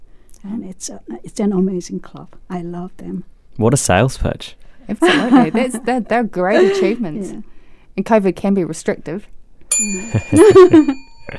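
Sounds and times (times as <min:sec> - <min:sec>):
speech: 0:00.4 - 0:11.3
voices talking and laughing: 0:03.6 - 0:07.4, 0:09.9 - 0:11.3
bright bell ding struck by a producer: 0:09.7 - 0:11.3.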